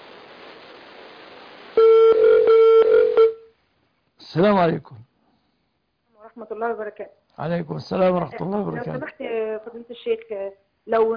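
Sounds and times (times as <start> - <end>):
steady electronic telephone line tone: 1.8 - 3.4
speech: 4.4 - 5.1, 6.4 - 11.1.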